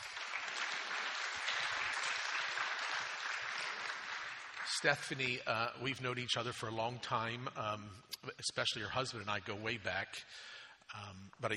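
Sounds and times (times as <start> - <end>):
audience applause: 0.0 - 5.4
speech: 4.8 - 11.5.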